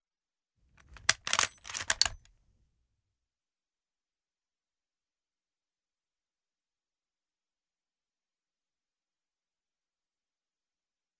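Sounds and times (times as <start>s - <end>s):
M44 bolt action rifle bolt cycling at fast speed: 0.8s - 2.2s.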